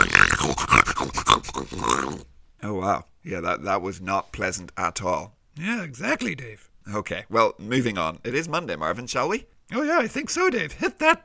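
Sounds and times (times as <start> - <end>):
pig snorting and grunting in squealing tonal bursts: 0.0 - 2.3
speech: 0.6 - 11.2.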